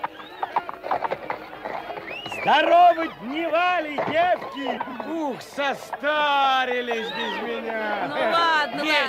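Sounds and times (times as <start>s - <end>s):
Cossack's horse hooves stamping and clopping: 0.0s - 6.9s
speech: 2.4s - 9.0s.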